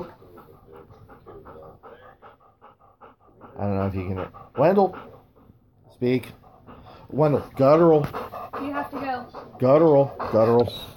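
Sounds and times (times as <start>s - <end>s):
dog panting: 0.0s - 10.9s
speech: 3.6s - 5.1s, 6.0s - 6.4s, 7.1s - 8.2s, 9.6s - 10.9s.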